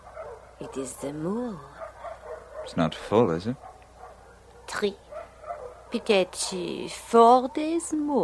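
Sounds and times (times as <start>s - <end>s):
stray dogs barking at night: 0.0s - 1.1s, 1.7s - 6.7s
dogs yelping: 0.0s - 6.8s
speech: 0.6s - 1.8s, 2.6s - 3.7s, 4.7s - 5.0s, 5.9s - 8.2s.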